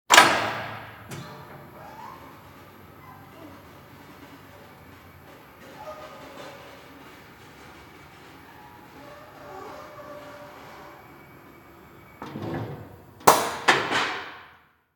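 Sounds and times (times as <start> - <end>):
car mechanic lift lowering: 0.1 - 2.6, 11.8 - 14.4.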